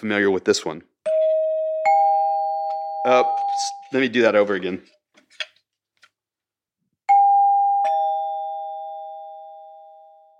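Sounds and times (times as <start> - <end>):
speech: 0.0 - 0.9, 3.0 - 5.0
electric ding-dong door chime: 1.1 - 3.7, 7.1 - 10.3.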